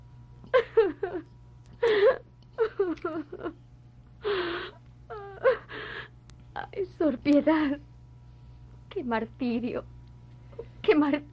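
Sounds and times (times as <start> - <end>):
woman sobbing and wailing: 0.5 - 1.2, 1.8 - 3.6, 4.2 - 6.1
speech: 7.2 - 7.9, 9.0 - 9.9, 10.6 - 11.3.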